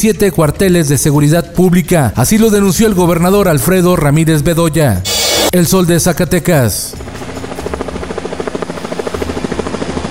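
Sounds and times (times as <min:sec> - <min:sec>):
speech: 0:00.0 - 0:07.0
helicopter engine whine: 0:06.8 - 0:10.0
helicopter rotor thumping: 0:06.9 - 0:10.0.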